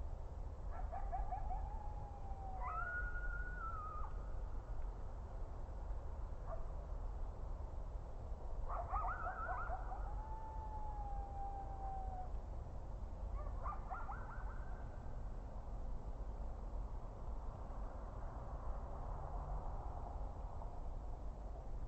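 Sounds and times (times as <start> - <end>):
steady low noise: 0.0 - 21.8
coyotes yipping: 0.7 - 4.2, 8.7 - 12.3, 13.4 - 15.0.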